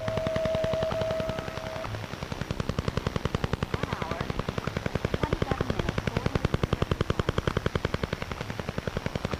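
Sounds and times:
steady whistle tone: 0.0 - 2.0
number station shortwave radio interference tapping: 0.0 - 9.3
shortwave radio static hiss: 0.0 - 9.3.

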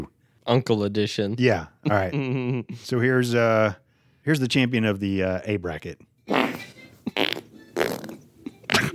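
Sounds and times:
speech: 0.0 - 6.5
loud wet sputtering farts: 6.3 - 8.9.

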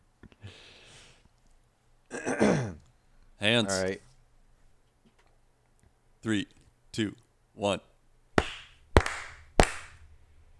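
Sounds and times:
speech: 3.5 - 4.0, 6.2 - 7.9
hard hand claps for audio sync: 8.4 - 10.1.

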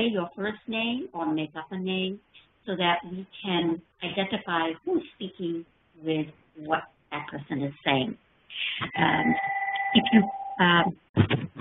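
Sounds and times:
noises: 0.0 - 11.5
speech: 0.0 - 11.5
phone ringing with a steady electronic tone: 8.9 - 10.7.

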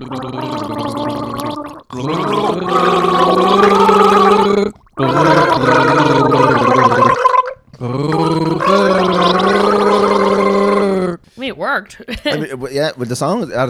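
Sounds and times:
speech: 0.0 - 6.1, 11.8 - 13.6
person gargling while singing the chorus of a song: 0.0 - 11.2.

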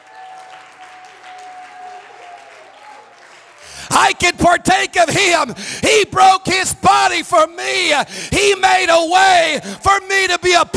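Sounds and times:
audience clapping hands: 0.0 - 3.9
speech: 3.9 - 10.7.

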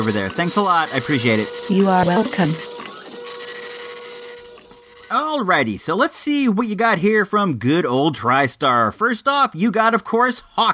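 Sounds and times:
speech: 0.0 - 2.7, 5.1 - 10.7
paper rustling as it feeds through a printer: 0.0 - 5.2
printer printing out a list: 0.0 - 6.0.

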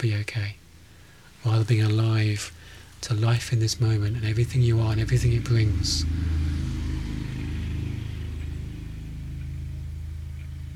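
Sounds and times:
speech: 0.0 - 0.6, 1.4 - 6.4
motorcycle passing by: 3.5 - 10.7.

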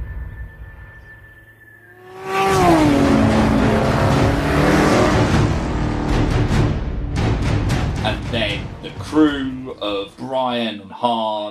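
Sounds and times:
car engines roaring and revving in a movie car chase: 2.0 - 9.9
voices talking: 8.1 - 11.5.

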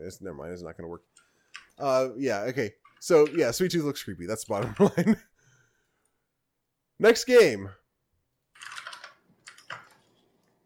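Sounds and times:
speech: 0.0 - 5.3, 7.0 - 7.8
computer keyboard typing: 8.5 - 10.0.

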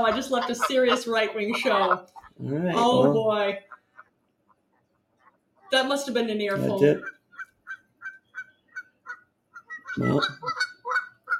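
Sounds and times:
speech: 0.0 - 3.8, 5.7 - 7.1, 10.0 - 10.6
Canada geese honking: 0.0 - 4.6, 5.2 - 11.3.

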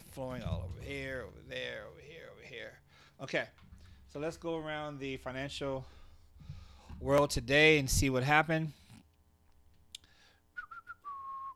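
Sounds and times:
speech: 0.2 - 6.0, 7.0 - 8.8
person whistling into the microphone: 10.6 - 11.5.

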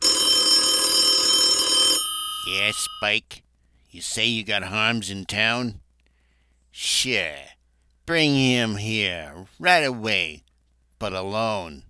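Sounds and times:
old telephone bell ringing: 0.0 - 3.2
speech: 2.5 - 5.8, 6.8 - 10.4, 11.0 - 11.8.

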